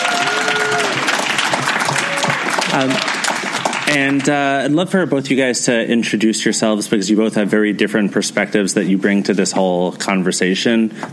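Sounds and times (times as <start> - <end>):
room full of people clapping at live podcast taping: 0.0 - 4.5
speech: 2.8 - 3.2, 3.9 - 11.1.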